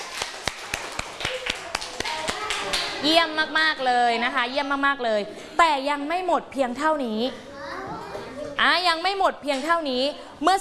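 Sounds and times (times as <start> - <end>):
children clapping hands during a classroom exercise: 0.0 - 3.0
speech: 3.0 - 7.5, 8.6 - 10.5.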